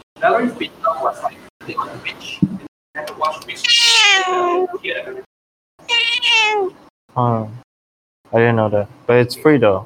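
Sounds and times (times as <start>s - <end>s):
speech: 0.3s - 0.8s, 7.2s - 7.6s, 8.3s - 9.8s
cat meowing: 3.6s - 4.7s, 5.8s - 6.8s.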